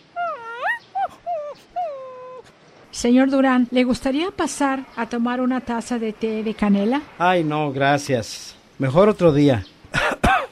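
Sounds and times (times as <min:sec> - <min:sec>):
small dog whimpering and yipping: 0:00.0 - 0:02.5
speech: 0:03.0 - 0:09.7.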